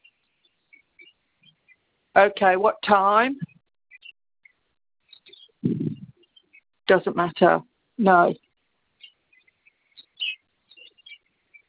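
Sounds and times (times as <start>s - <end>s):
small pet bird chirping: 0.0s - 1.9s, 3.4s - 6.7s, 8.3s - 11.6s
speech: 2.2s - 3.5s, 6.9s - 8.4s.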